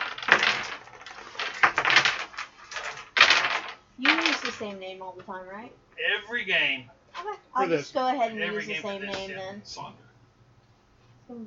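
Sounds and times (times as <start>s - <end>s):
dice clattering against a tabletop during a game: 0.0s - 4.6s
speech: 4.0s - 10.1s, 11.3s - 11.4s.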